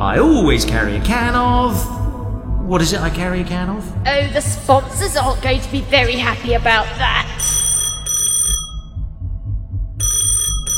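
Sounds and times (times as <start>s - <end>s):
low thumping rumble: 0.0s - 10.1s
speech: 0.2s - 2.0s, 2.7s - 7.4s
phone ringing in bright trilling bursts: 7.4s - 8.9s, 10.0s - 10.7s.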